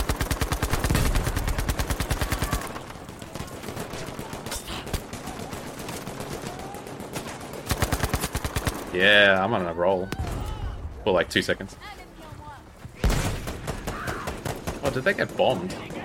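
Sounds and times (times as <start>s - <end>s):
rapid automatic gunfire in a video game: 0.0s - 9.3s, 13.1s - 16.0s
speech: 9.0s - 10.2s, 11.1s - 11.9s, 14.9s - 15.8s.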